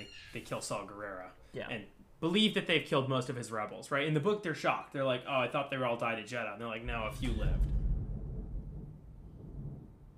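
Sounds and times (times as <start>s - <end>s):
speech: 0.1s - 7.8s
thunder rumble: 6.8s - 10.1s.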